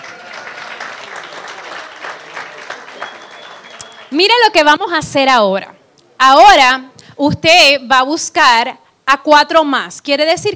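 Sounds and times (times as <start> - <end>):
audience applause: 0.0 - 4.2
speech: 4.1 - 10.5.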